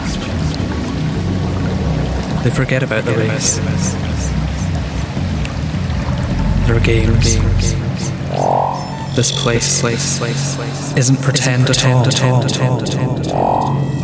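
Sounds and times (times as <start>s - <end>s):
waterfall roaring into a river: 1.1s - 9.1s
speech: 2.4s - 4.4s, 6.7s - 8.5s, 9.2s - 14.0s.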